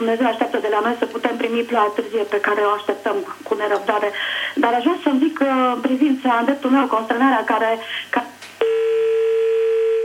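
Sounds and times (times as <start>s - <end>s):
speech: 0.0s - 8.8s
telephone dial tone: 8.6s - 10.0s
telephone line noise from a dropped call: 8.6s - 10.0s.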